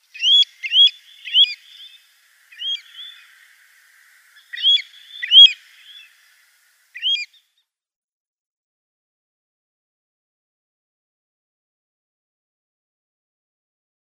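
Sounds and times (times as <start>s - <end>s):
Pacific Golden-Plover flock calls in New Zealand: 0.0s - 7.4s.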